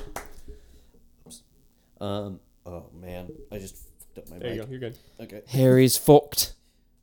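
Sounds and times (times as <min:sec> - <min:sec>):
soft polite golf clap hand claps: 0:00.0 - 0:00.7
faint hum: 0:00.0 - 0:07.0
speech: 0:02.0 - 0:06.5.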